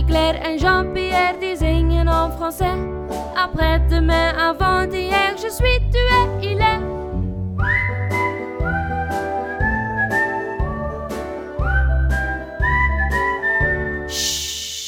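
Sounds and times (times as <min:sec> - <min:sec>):
instrumental backing: 0:00.0 - 0:14.8
speech: 0:00.1 - 0:07.0
whistled melody: 0:06.2 - 0:14.8
hiss: 0:14.1 - 0:14.8.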